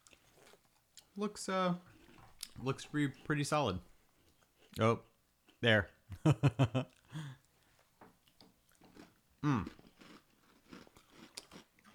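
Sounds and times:
biting and chewing a crunchy coconut biscuit: 0.0s - 1.2s, 1.9s - 3.2s, 8.2s - 11.9s
speech: 1.2s - 1.9s, 2.6s - 3.9s, 4.8s - 7.4s, 9.4s - 9.8s.

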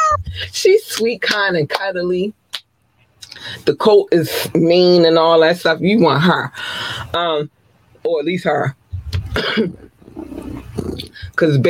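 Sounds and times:
speech: 0.4s - 2.4s, 3.4s - 8.8s, 9.4s - 11.6s
person growling and roaring mimicking a big cat: 9.7s - 11.2s.

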